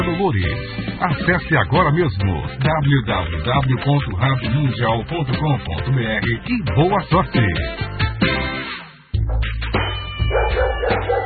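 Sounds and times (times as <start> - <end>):
speech: 0.0 - 8.5
dog barking and yipping: 10.2 - 11.2.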